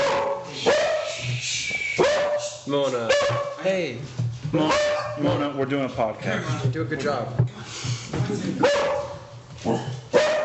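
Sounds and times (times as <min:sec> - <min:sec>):
dog barking: 0:00.0 - 0:01.2, 0:02.0 - 0:02.5, 0:03.1 - 0:03.6, 0:04.6 - 0:05.2, 0:08.6 - 0:09.2, 0:10.1 - 0:10.4
speech: 0:02.7 - 0:08.9, 0:09.6 - 0:10.0.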